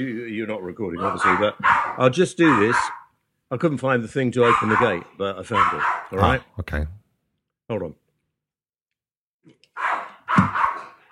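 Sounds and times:
speech: 0.0 - 7.0, 7.7 - 8.0
dog barking: 0.9 - 3.1, 4.4 - 6.3, 9.7 - 11.0.

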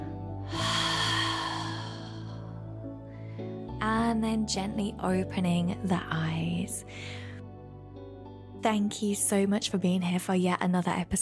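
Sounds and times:
steady low tone: 0.0 - 7.8
deep exhale through the open mouth: 0.4 - 2.6
speech: 3.8 - 7.3, 8.6 - 11.2.

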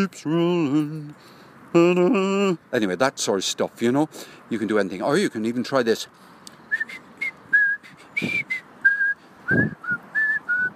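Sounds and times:
speech: 0.0 - 7.0, 8.2 - 8.5, 9.5 - 9.8
person whistling a short tune: 6.7 - 10.7.

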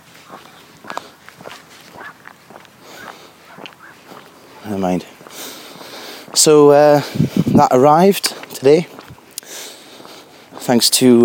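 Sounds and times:
dog paws tapping across a floor: 0.9 - 4.3
speech: 4.7 - 5.2, 6.4 - 8.9, 10.7 - 11.2.

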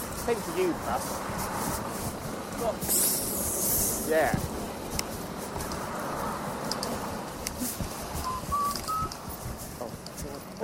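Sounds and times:
steady rustling hiss: 0.0 - 10.6
speech: 0.2 - 1.9, 2.6 - 3.1, 4.1 - 4.5
pet bird whistling: 8.2 - 9.1.

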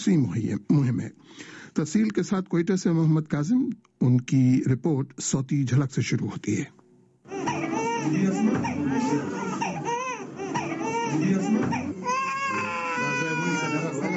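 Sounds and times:
speech: 0.0 - 6.8, 8.1 - 9.4, 11.1 - 11.9
infants crying while getting polio vaccine injections at a hospital in Quetta: 7.3 - 14.1.

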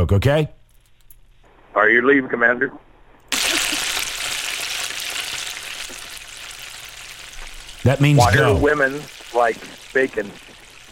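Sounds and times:
speech: 0.0 - 0.6, 1.8 - 2.9, 7.8 - 10.6
bacon sizzling and crackling in a hot pan: 3.3 - 10.9.

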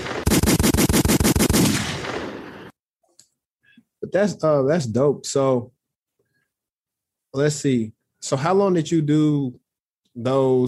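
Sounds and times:
rapid burst of gunshot sound effects: 0.0 - 2.7
speech: 4.1 - 5.8, 7.3 - 9.6, 10.2 - 10.6.

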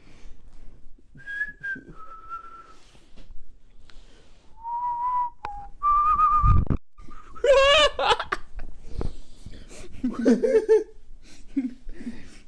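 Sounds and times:
person whistling a tune: 1.2 - 2.9, 4.6 - 7.3
giggling laughter: 7.1 - 8.6, 10.0 - 12.4.

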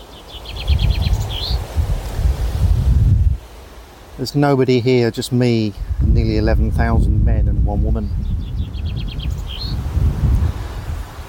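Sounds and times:
small bird chirping: 0.0 - 1.6, 8.2 - 9.8
outdoor breeze gusting through cemetery trees: 0.0 - 11.2
speech: 4.2 - 8.4.

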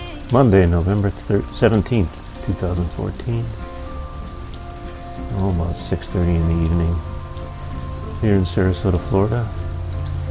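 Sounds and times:
steady evening rain in Sarasota Florida: 0.0 - 10.2
speech: 0.3 - 3.7, 5.2 - 7.1, 8.2 - 9.6.

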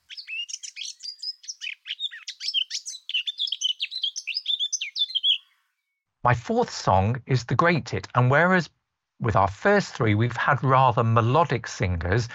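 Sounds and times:
male Eurasian blackcap singing a fluty warbled verse: 0.0 - 5.6
speech: 6.2 - 12.3.

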